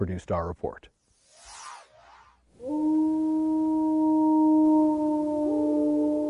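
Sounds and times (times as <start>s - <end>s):
speech: 0.0s - 1.0s
gray wolf howling in the northern Rockies: 2.6s - 6.2s.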